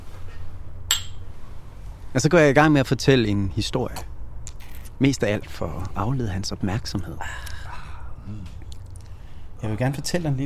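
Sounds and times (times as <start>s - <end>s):
low steady rumble: 0.0s - 10.4s
whisky glasses clinking in a toast: 0.9s - 1.3s
speech: 2.2s - 4.1s, 5.0s - 7.5s, 9.6s - 10.4s.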